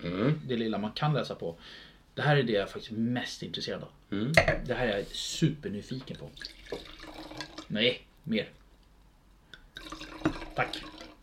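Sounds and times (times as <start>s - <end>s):
speech: 0.0s - 8.6s, 10.6s - 11.0s
wine pouring into a glass: 6.1s - 7.8s, 9.6s - 11.2s.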